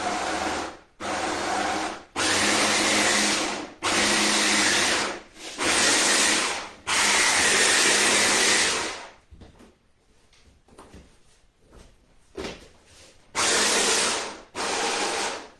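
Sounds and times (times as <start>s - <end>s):
kitchen blender blending herbs with water: 0.0s - 9.1s, 13.4s - 15.5s.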